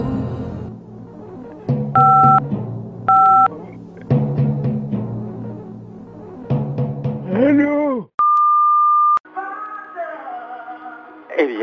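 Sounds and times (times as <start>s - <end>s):
music: 0.0s - 8.0s, 9.2s - 11.6s
answering machine electronic beeps: 2.0s - 2.4s, 3.1s - 3.5s.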